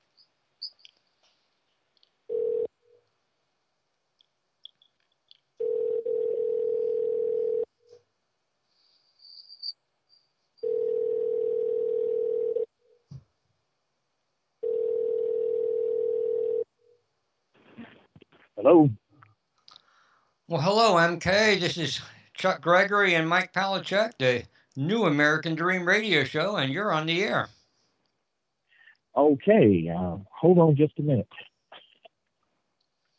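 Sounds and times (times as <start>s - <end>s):
telephone line tone as a phone call is placed: 2.3s - 2.7s, 5.6s - 7.7s, 10.6s - 12.7s, 14.6s - 16.6s
speech: 18.7s - 19.0s, 20.5s - 27.6s, 29.2s - 31.5s.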